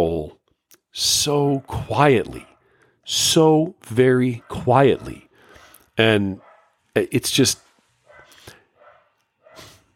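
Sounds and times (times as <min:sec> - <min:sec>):
speech: 0:01.0 - 0:02.5, 0:03.1 - 0:05.2, 0:06.0 - 0:06.4, 0:07.0 - 0:07.6
corgi dog barking: 0:02.4 - 0:02.8, 0:04.3 - 0:05.3, 0:06.4 - 0:06.8, 0:08.0 - 0:09.9.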